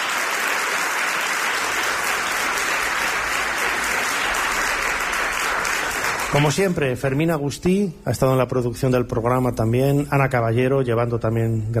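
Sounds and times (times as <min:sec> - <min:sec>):
crowd applauding loudly: 0:00.0 - 0:07.3
speech: 0:06.3 - 0:11.7.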